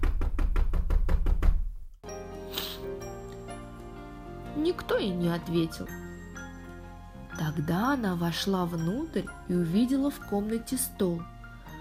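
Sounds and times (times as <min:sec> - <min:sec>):
sharp hollow knocks on a wooden door: 0:00.0 - 0:01.8
soft music: 0:02.0 - 0:11.8
speech: 0:04.6 - 0:06.1, 0:07.4 - 0:11.3.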